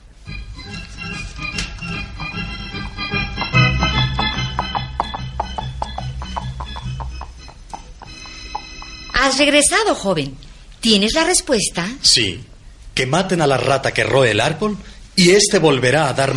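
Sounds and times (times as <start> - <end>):
sustained musical backdrop: 0.3 - 9.6
horse hooves clip-clopping: 2.3 - 9.5
speech: 9.2 - 16.3.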